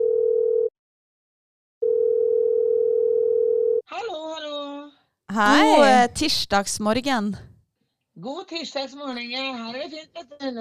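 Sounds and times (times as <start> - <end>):
telephone ringback tone of an outgoing call: 1.8 - 3.8
speech: 5.4 - 7.5, 8.2 - 10.5.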